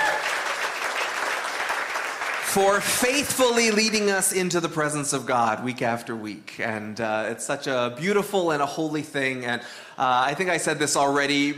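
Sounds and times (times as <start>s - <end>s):
church audience applause for worship team: 0.0s - 3.2s
speech: 2.5s - 11.5s.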